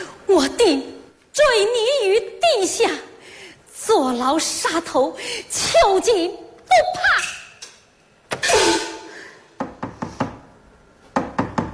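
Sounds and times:
speech: 0.3s - 3.1s, 3.8s - 7.2s
sharp knocks on a door: 11.2s - 11.7s.

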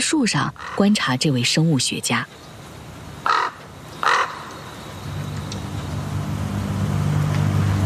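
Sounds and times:
speech: 0.0s - 2.5s
low steady rumble of traffic or engine hum: 0.0s - 7.8s
crows cawing: 0.5s - 1.1s, 3.2s - 5.1s.

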